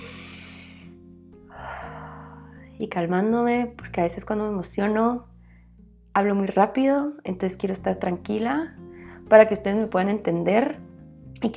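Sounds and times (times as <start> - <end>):
slow deep breath with inhale and long breathy exhale: 0.0 - 0.9, 1.5 - 2.8, 5.4 - 5.8, 8.9 - 9.2
soft steady music: 0.0 - 11.5
speech: 2.8 - 5.3, 6.2 - 11.5.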